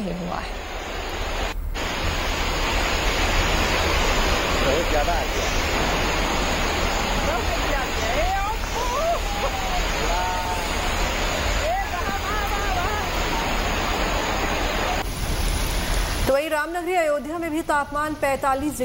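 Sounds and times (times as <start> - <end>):
speech: 0.0 - 1.3, 4.7 - 6.0, 16.3 - 18.8
heavy rain in Kolkata India: 0.0 - 17.0
rushing floodwater in Kolkata India: 0.3 - 16.4
faint voices calling out: 6.8 - 15.0.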